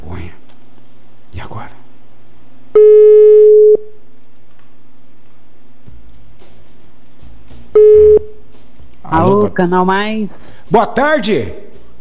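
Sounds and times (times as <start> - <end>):
speech: 1.4 - 1.8, 9.6 - 11.6
telephone call ringing tones: 2.8 - 4.0, 7.8 - 8.4.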